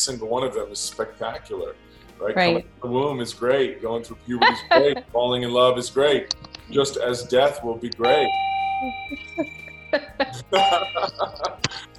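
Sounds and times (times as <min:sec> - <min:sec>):
speech: 0:00.0 - 0:11.9
laughter: 0:04.2 - 0:05.2, 0:09.1 - 0:11.9
bell ding like a doorbell: 0:08.0 - 0:11.4.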